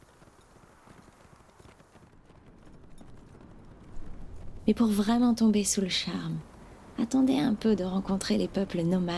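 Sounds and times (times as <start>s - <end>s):
hooves of a galloping horse: 0.0s - 6.2s
dense rumbling background: 0.6s - 9.1s
speech: 4.7s - 9.1s.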